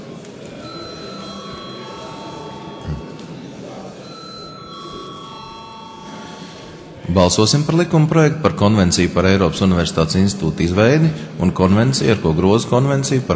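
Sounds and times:
faint murmur at a parliament plenary sitting: 0:00.0 - 0:13.3
electric bell ringing to call a parliamentary vote: 0:00.6 - 0:03.2, 0:04.0 - 0:06.9
speech: 0:07.1 - 0:13.3.

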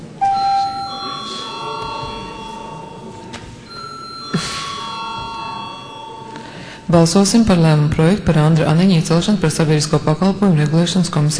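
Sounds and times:
low murmur in the parliament chamber: 0:00.0 - 0:11.3
parliament chamber bell ringing before a secret vote: 0:00.2 - 0:07.3
speech: 0:06.9 - 0:11.3.

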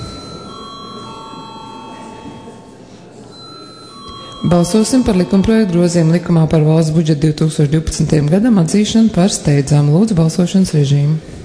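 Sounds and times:
parliament chamber bell ringing before a vote on a bill: 0:00.0 - 0:07.1
faint murmur of voices: 0:00.0 - 0:11.4
speech: 0:04.4 - 0:11.4.

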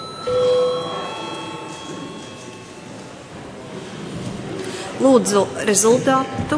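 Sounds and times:
parliament chamber bell ringing for registration: 0:00.0 - 0:03.4
faint murmur of a large room: 0:00.0 - 0:06.5
speech: 0:05.0 - 0:06.5.

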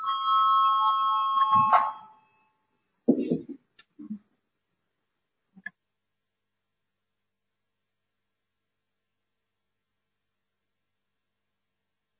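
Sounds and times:
bell calling a vote in a parliamentary chamber: 0:00.0 - 0:02.6.

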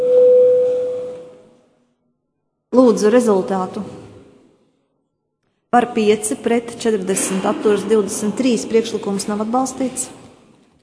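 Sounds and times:
electronic bell tone signalling a vote in parliament: 0:00.0 - 0:01.4
speech: 0:02.8 - 0:04.0, 0:05.7 - 0:10.2.

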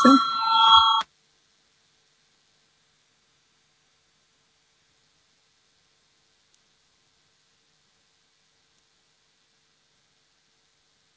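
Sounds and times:
parliament voting bell electronic tone: 0:00.0 - 0:01.0.

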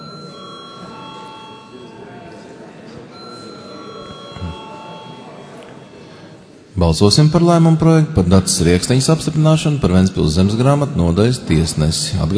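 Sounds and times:
electric voting bell ringing in the Latvian parliament: 0:00.0 - 0:06.1
murmur of voices: 0:00.0 - 0:12.3
speech: 0:06.8 - 0:12.3.

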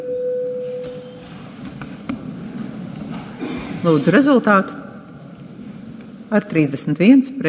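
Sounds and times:
electronic bell tone rung in a parliament session before a vote: 0:00.0 - 0:01.1
faint shuffling: 0:00.6 - 0:06.3
quiet murmur: 0:00.8 - 0:06.6
speech: 0:03.8 - 0:04.8, 0:06.3 - 0:07.4.

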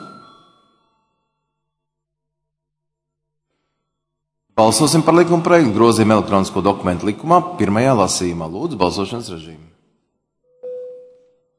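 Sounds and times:
parliament chamber bell rung before a vote: 0:00.0 - 0:01.0, 0:10.6 - 0:11.4
speech: 0:04.6 - 0:09.8.

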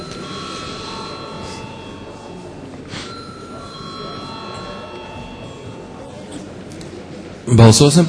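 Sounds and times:
parliament call bell ringing in the Latvian Saeima: 0:00.0 - 0:06.3
faint murmur of room noise: 0:00.0 - 0:08.0.

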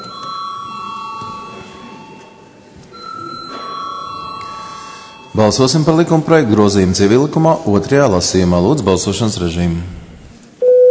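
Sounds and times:
electric bell ringing in parliament to call members to a vote: 0:00.0 - 0:02.3, 0:03.0 - 0:05.7
room noise: 0:00.0 - 0:10.9
speech: 0:05.4 - 0:10.0.

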